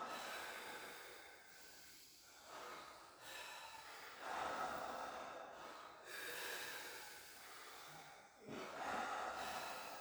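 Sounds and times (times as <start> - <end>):
slow deep breaths in and out: 0.0 - 9.9.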